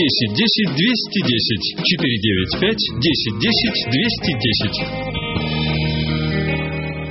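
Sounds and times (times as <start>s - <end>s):
radio station jingle with heavily processed sung melody: 0.0s - 5.1s
speech: 0.0s - 5.2s
loud sustained synth chord: 2.9s - 7.1s.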